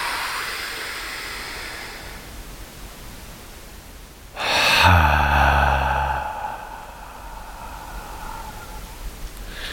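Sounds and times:
deep breath drawn in through the mouth: 0.0s - 2.3s, 4.4s - 9.7s
faint hiss: 0.0s - 9.7s.

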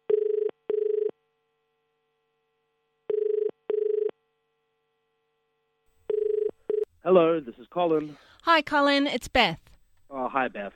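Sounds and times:
telephone ringing in double-burst pattern for an outgoing call: 0.1s - 1.1s, 3.1s - 4.1s, 6.1s - 6.9s
speech: 7.1s - 9.6s, 10.2s - 10.7s.

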